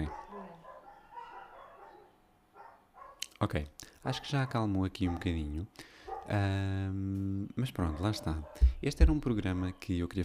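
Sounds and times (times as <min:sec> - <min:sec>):
several dogs barking at cats: 0:00.0 - 0:03.3, 0:04.0 - 0:06.4, 0:07.8 - 0:09.2
speech: 0:03.4 - 0:10.2.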